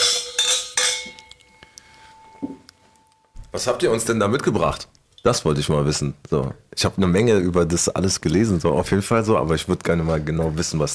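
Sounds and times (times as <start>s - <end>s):
wine glasses clinking in a toast: 0.0s - 2.6s
speech: 3.6s - 10.9s.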